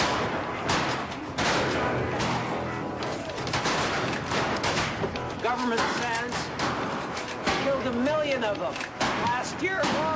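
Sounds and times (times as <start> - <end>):
dense continuous rush of noise: 0.0 - 10.1
gunshots during a buffalo hunt: 0.0 - 10.1
speech: 5.6 - 6.1, 8.4 - 10.1.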